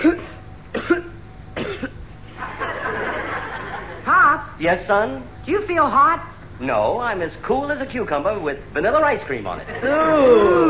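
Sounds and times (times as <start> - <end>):
man clearing throat: 0.0 - 2.0
man coughing: 0.0 - 2.0
laughter: 2.3 - 4.1, 9.6 - 10.6
speech: 4.6 - 10.6.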